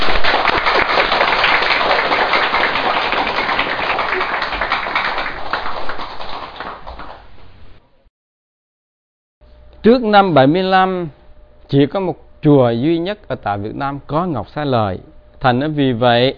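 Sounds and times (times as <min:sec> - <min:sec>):
audience applauding: 0:00.0 - 0:07.5
speech: 0:09.8 - 0:16.3.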